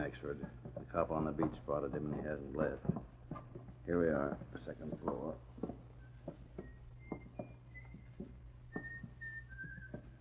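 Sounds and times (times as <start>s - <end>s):
speech: 0.0s - 3.1s, 3.9s - 5.5s
man whistling a muffled tune behind a closed door: 6.0s - 10.1s.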